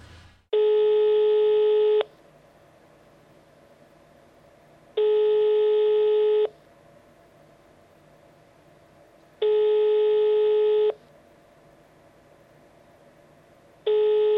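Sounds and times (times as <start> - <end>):
buzzy telephone line tones while a call is placed: 0.5 - 2.2, 5.0 - 6.6, 9.4 - 11.0, 13.8 - 14.3.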